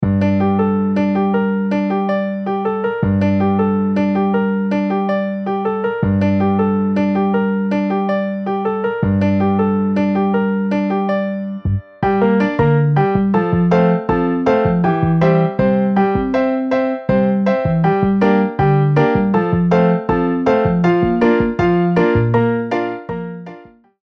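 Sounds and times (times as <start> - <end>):
MIDI piano bass: 0.0 - 24.0.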